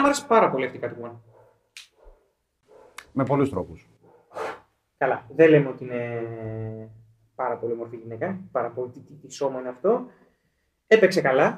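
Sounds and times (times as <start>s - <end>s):
speech: 0.0s - 1.9s, 3.2s - 10.2s, 10.9s - 11.5s
dog barking: 1.3s - 3.0s, 4.0s - 4.6s.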